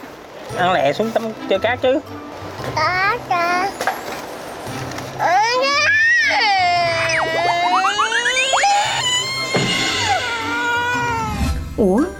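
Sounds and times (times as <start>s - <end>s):
speech: 0.5s - 3.8s, 11.8s - 12.1s
young child wailing: 5.2s - 11.5s.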